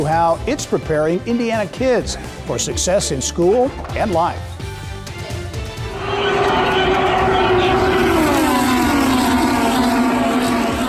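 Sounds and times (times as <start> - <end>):
speech: 0.0 - 4.5
crowd noise at a speedway: 5.9 - 10.8
race car engines roaring at a speedway: 5.9 - 10.8.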